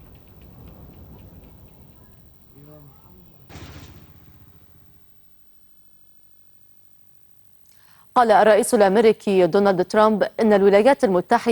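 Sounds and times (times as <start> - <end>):
airstrike explosion: 0.0 - 5.1
speech: 8.2 - 11.4.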